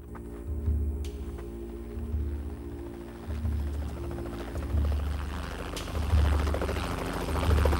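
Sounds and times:
constant helicopter engine hum: 0.5s - 7.7s
helicopter rotor thudding while rising and hovering: 3.0s - 7.7s.

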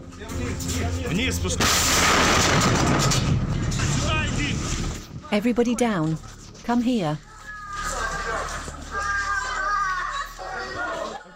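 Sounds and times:
speech: 0.2s - 7.3s
gunfire over rooftops: 1.6s - 3.4s
explosions over rooftops: 1.6s - 5.0s
laughter: 7.7s - 11.3s.

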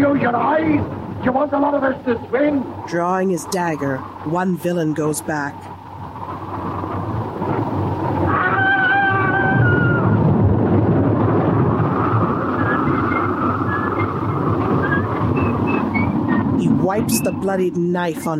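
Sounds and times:
low rumbling: 0.0s - 17.8s
raging storm wind and rain roaring: 0.0s - 18.3s
speech: 0.1s - 5.8s, 17.0s - 18.3s
howling whistles: 8.1s - 10.5s, 11.7s - 16.6s.

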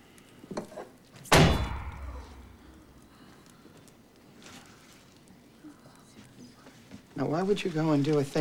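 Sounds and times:
heavy tankard slammed onto a counter to squash a bee: 1.3s - 2.7s
speech: 7.2s - 8.3s.

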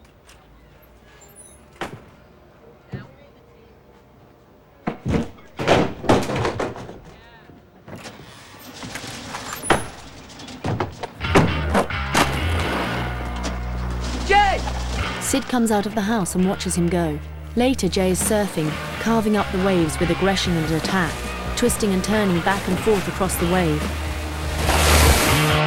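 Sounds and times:
knocking movement noise: 4.8s - 7.2s, 7.8s - 25.5s
skateboard pushed down onto the ground: 4.8s - 7.2s, 10.7s - 15.2s
speech: 15.4s - 24.0s.

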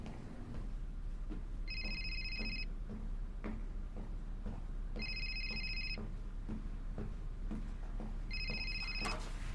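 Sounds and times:
low hum: 0.0s - 9.5s
restaurant telephone ringing: 1.7s - 2.7s, 5.0s - 6.0s, 8.3s - 9.3s.

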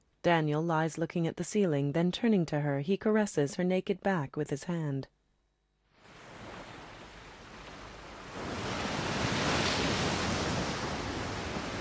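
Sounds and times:
speech: 0.2s - 5.2s
ocean waves crashing in rolling foamy lines: 6.0s - 11.7s.

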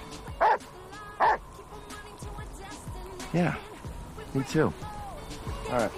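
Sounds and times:
dog barking: 0.3s - 1.4s
dog whining: 0.4s - 0.6s
speech: 3.3s - 3.7s, 4.3s - 4.9s, 5.7s - 5.9s.

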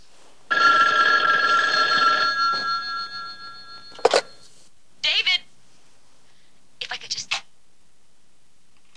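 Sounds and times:
telephone bell ringing: 0.5s - 4.4s.

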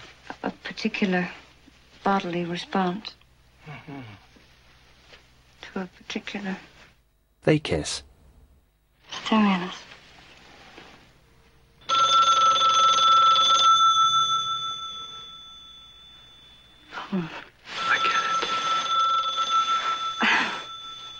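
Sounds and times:
speech: 0.8s - 1.4s, 2.0s - 4.2s, 5.8s - 6.7s, 7.4s - 8.1s, 9.3s - 9.9s, 17.1s - 17.5s
telephone bell ringing: 11.8s - 21.1s.

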